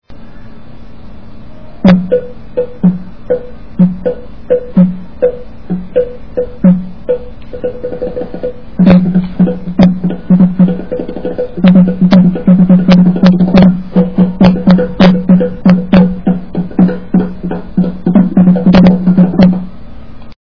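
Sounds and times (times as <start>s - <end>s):
naqaara drums: 1.8s - 19.7s.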